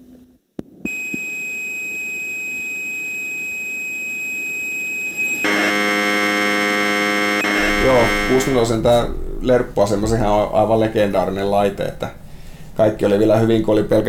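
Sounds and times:
piercing electronic carrier tone of Commodore 64 program data broadcast: 0.9 - 10.7
dense buzzing screech of modulated Commodore 64 program data: 5.4 - 9.5
speech: 8.3 - 12.2, 12.8 - 14.0.

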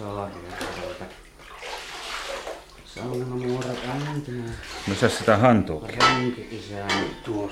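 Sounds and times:
warm water splashing and sloshing in a basin as hands are washed in a sauna: 0.0 - 7.5
speech: 3.0 - 7.5.

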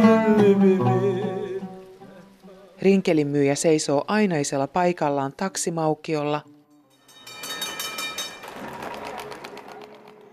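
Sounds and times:
speech: 0.3 - 1.3, 2.8 - 6.5
tram wheels clattering along tracks: 7.0 - 10.3.

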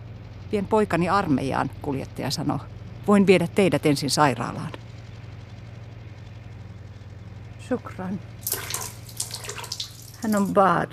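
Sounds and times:
steady low hum: 0.0 - 10.9
speech: 0.5 - 4.8, 7.7 - 8.6, 10.2 - 10.9
olive oil sloshing in a small basin while bathing a baby: 8.4 - 10.6.

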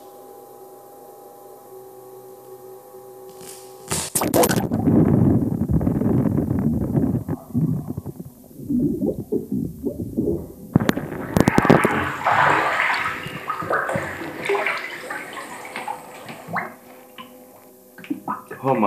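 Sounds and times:
microphone submerged and moving in water inside a floatation tank: 3.4 - 17.4.

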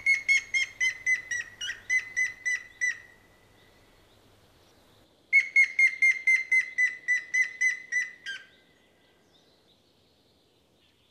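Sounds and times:
Grey-headed Woodpecker whistled call: 0.0 - 3.3, 5.3 - 8.6.

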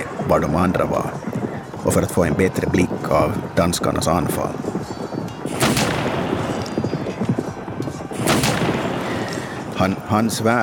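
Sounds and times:
dense rumbling noise: 0.0 - 10.6
horse hooves clip-clopping as rider departs: 0.0 - 10.6
speech: 0.3 - 4.8, 9.8 - 10.6.

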